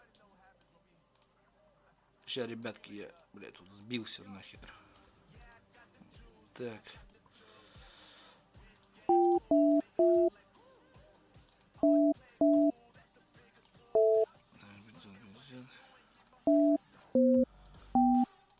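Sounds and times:
speech: 2.3 - 4.8, 6.6 - 7.1
telephone line tones while dialing a number: 9.1 - 10.3, 11.8 - 12.7, 14.0 - 14.2, 16.5 - 17.4, 18.0 - 18.3.

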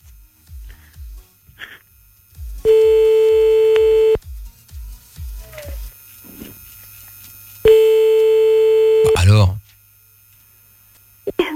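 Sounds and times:
rhythmic low pulses on a telephone line during dialing: 2.6 - 4.2, 7.6 - 9.4.

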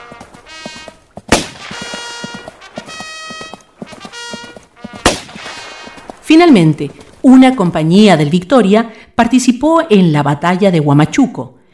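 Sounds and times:
galloping hoofbeats: 0.0 - 8.4
gunshots fired in a historical war radio drama: 1.3 - 2.8, 5.0 - 6.0
speech: 6.3 - 11.6.

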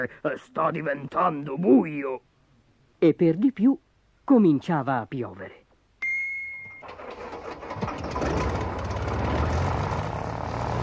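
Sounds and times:
speech: 0.0 - 2.3, 3.0 - 5.6
propeller airplane engine taking off from a roof: 7.2 - 10.8.

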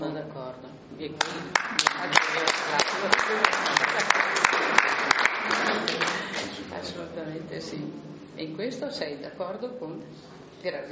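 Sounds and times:
speech: 0.8 - 4.3, 7.4 - 10.9
audience applause: 1.5 - 6.6.

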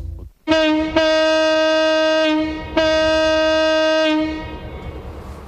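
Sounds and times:
car horn honking in a parking lot: 0.5 - 4.7.

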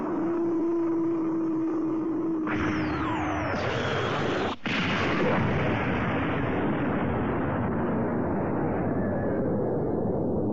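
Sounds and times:
descending whistling tones: 0.0 - 4.6
steady low hum: 0.0 - 4.8
thermonuclear weapons explosion roaring burst: 2.6 - 10.4.

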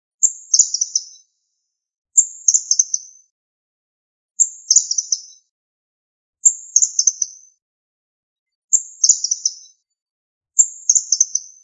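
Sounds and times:
bird chirping: 0.2 - 1.4, 2.2 - 3.3, 4.4 - 5.5, 6.4 - 7.6, 8.7 - 9.8, 10.6 - 11.6.

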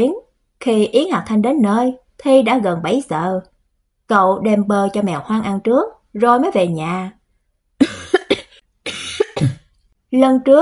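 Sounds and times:
speech: 0.0 - 3.5, 4.1 - 7.2, 10.1 - 10.6
dry coughing from a person not fully recovered after falling into water: 7.8 - 9.7.

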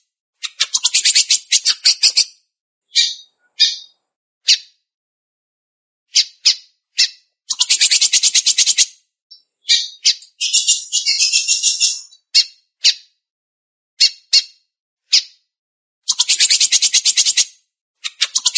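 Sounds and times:
Belgian canary singing fast buzzy trills: 0.4 - 2.3, 2.9 - 4.0, 6.2 - 13.0, 16.1 - 17.4, 18.2 - 18.5
Belgian canary short single chirps: 0.4 - 4.8, 6.1 - 13.2, 14.0 - 15.4, 16.1 - 18.5.

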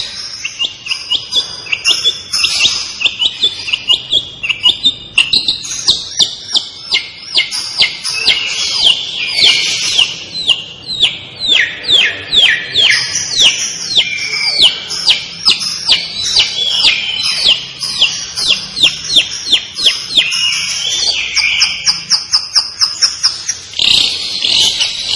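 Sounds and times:
long-tailed shrike singing: 0.0 - 25.1.

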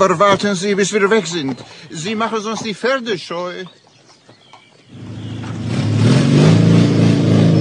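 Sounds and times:
speech: 0.0 - 3.8
motorcycle with sidecar engine revving: 4.9 - 7.5.

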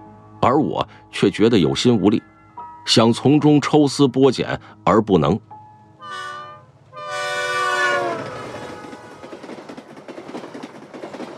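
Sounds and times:
speech: 0.4 - 5.5
train horn blasts on a rail journey: 6.0 - 9.8
steady rhythmic clatter of train wheels on track: 7.1 - 11.3.

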